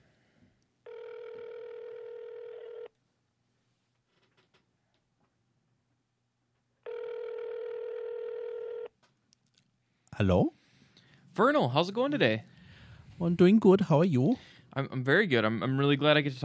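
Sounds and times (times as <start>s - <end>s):
phone line ringing with a buzzy tone through the handset: 0.8s - 2.9s, 6.8s - 8.9s
speech: 10.2s - 10.6s, 11.4s - 12.5s, 13.2s - 16.4s.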